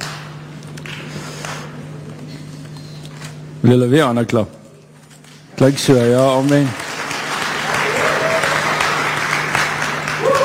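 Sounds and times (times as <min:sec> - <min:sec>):
speech: 0:03.6 - 0:04.6, 0:05.6 - 0:06.8
audience at a church service applauding: 0:06.0 - 0:10.4.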